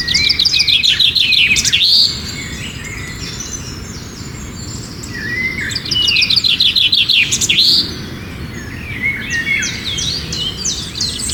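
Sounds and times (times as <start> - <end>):
birds singing with chirps and whistled phrases: 0.0 - 11.3.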